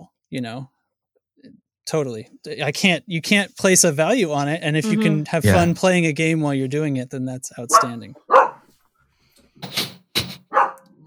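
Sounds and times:
speech: 0:00.3 - 0:00.7, 0:01.4 - 0:08.3
dog barking: 0:07.7 - 0:08.7, 0:10.5 - 0:10.9.

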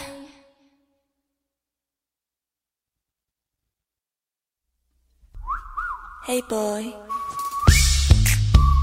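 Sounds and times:
whistled melody in a song: 0:05.4 - 0:06.2, 0:07.0 - 0:08.8
speech: 0:06.2 - 0:07.2.

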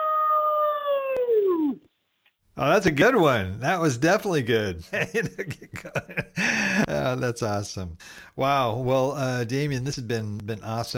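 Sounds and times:
human voice imitating a wolf howl: 0:00.0 - 0:01.8
speech: 0:02.6 - 0:10.9.

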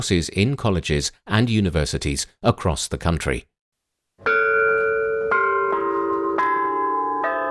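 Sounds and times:
speech: 0:00.0 - 0:03.5
ancient Chinese bronze chime bells struck in a slow melody: 0:04.3 - 0:07.4.

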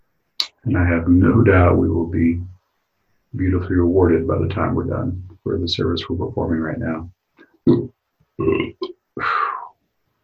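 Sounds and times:
speech: 0:00.6 - 0:02.5, 0:03.3 - 0:09.3
loud gurgling belches: 0:07.6 - 0:09.0.

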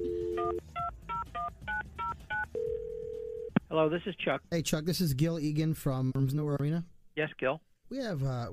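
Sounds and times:
telephone dial tone: 0:00.0 - 0:00.6, 0:02.4 - 0:03.5
speech: 0:03.7 - 0:08.5.

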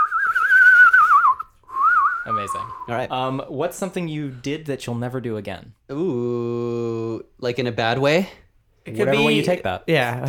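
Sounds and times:
person whistling while inhaling: 0:00.0 - 0:02.9
speech: 0:02.3 - 0:10.2.

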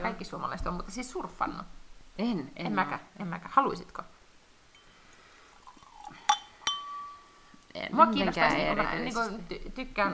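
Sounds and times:
speech: 0:00.2 - 0:04.2, 0:07.8 - 0:10.1
glass clinking: 0:04.7 - 0:07.6
soft handling sounds of a drink being served: 0:04.8 - 0:07.5.

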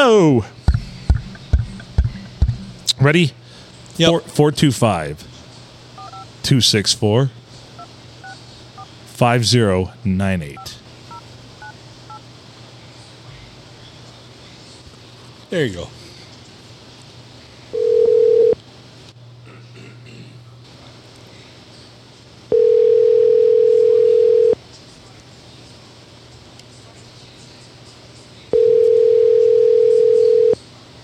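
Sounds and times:
low constant hum: 0:00.0 - 0:31.0
speech: 0:00.1 - 0:00.6, 0:03.0 - 0:03.4, 0:04.0 - 0:05.3, 0:06.4 - 0:07.4, 0:09.2 - 0:10.8, 0:15.5 - 0:16.0
long steady electronic beeps: 0:06.0 - 0:06.2
telephone keypad tones: 0:06.0 - 0:06.2, 0:17.8 - 0:18.6, 0:28.6 - 0:30.6
telephone dial tone: 0:17.8 - 0:18.6, 0:22.5 - 0:24.6, 0:28.5 - 0:30.6.

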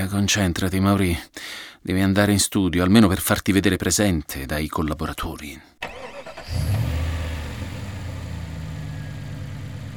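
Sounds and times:
speech: 0:00.0 - 0:05.8, 0:06.5 - 0:06.9
car engine cranking, catching and idling on a very hot day in Rome: 0:05.8 - 0:09.9.

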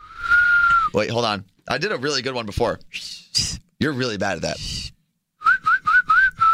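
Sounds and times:
person whistling short clear notes: 0:00.0 - 0:01.0, 0:05.4 - 0:06.5
speech: 0:00.9 - 0:04.8.

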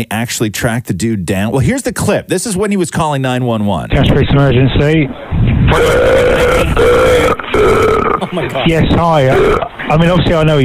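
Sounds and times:
speech: 0:00.0 - 0:10.6
man burping into telephone mouthpiece on emergency call: 0:05.7 - 0:08.4, 0:09.2 - 0:09.8.

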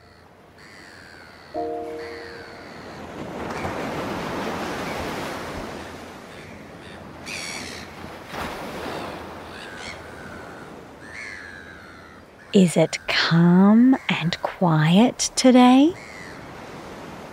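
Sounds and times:
high-pitched bird calls chirping over the surf: 0:01.6 - 0:03.0
ocean waves breaking onshore: 0:01.6 - 0:11.0, 0:14.8 - 0:17.3
speech: 0:12.6 - 0:16.1.

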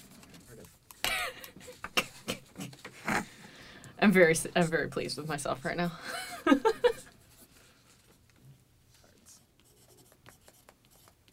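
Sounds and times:
speech: 0:04.1 - 0:06.7
laughter: 0:05.9 - 0:07.2
pen or pencil writing noises picked up by a sensitive microphone: 0:09.6 - 0:11.3.

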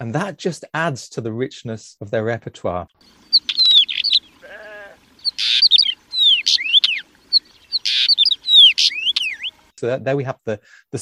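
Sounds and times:
speech: 0:00.0 - 0:03.5, 0:09.8 - 0:10.9
rich complex birdsong with sweeping whistles and buzzy trills: 0:03.0 - 0:09.7.

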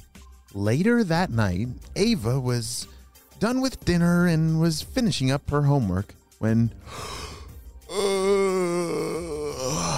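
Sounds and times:
speech: 0:00.5 - 0:07.3
breath intake: 0:06.8 - 0:07.5
person yawning with a wavering moan: 0:06.9 - 0:09.9.

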